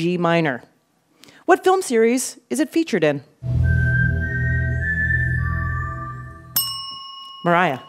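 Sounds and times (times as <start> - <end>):
speech: 0.0 - 0.7, 1.5 - 3.6, 7.4 - 7.8
person whistling a four-note melody: 3.4 - 6.6.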